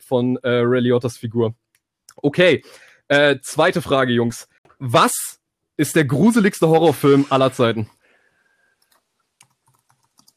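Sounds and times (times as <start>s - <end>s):
speech: 0.0s - 1.6s, 2.2s - 8.0s
computer keyboard typing: 8.8s - 10.3s.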